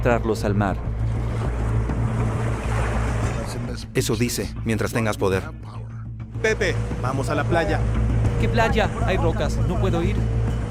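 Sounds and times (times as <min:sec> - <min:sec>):
speech: 0:00.0 - 0:01.2, 0:03.8 - 0:05.6, 0:06.4 - 0:10.4
wind: 0:00.0 - 0:04.0, 0:06.3 - 0:10.6
sea waves: 0:00.4 - 0:04.0, 0:06.4 - 0:10.6
failing boat engine running on the sea: 0:00.7 - 0:04.0, 0:06.2 - 0:10.6.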